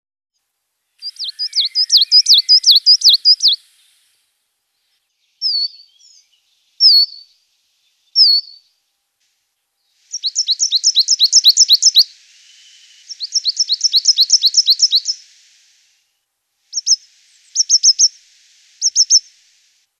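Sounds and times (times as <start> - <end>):
coal tit Parus ater calling: 0.9 - 3.9, 5.4 - 7.4, 8.0 - 8.7, 9.9 - 16.0, 16.7 - 19.8.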